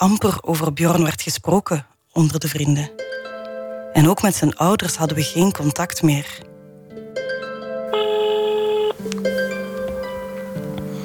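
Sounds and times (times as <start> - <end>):
speech: 0.0 - 3.0, 4.0 - 6.5
telephone ringing on an outgoing call: 7.9 - 10.1.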